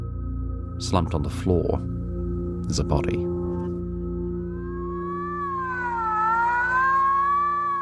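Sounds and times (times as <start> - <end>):
speech: 0.8 - 2.0, 2.7 - 3.4
ambulance siren: 3.4 - 7.8.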